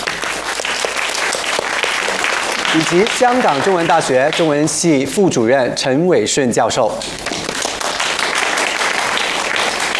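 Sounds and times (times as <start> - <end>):
audience applause at a forum: 0.0 - 4.7, 7.2 - 9.9
speech: 2.7 - 7.4.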